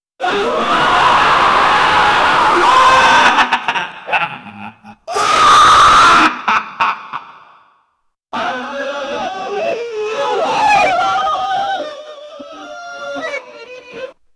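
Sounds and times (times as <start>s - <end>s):
person crying out in agony: 0.2s - 7.3s, 8.4s - 14.2s
person laughing madly: 2.8s - 5.2s, 5.9s - 7.6s, 10.2s - 14.2s.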